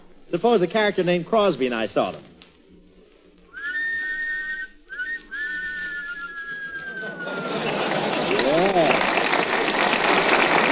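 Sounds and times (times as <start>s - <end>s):
burst of noisy hiss: 0.0s - 10.6s
speech: 0.3s - 2.3s
two men wolf-whistling in harmony: 3.5s - 8.7s
laughter: 6.2s - 10.6s.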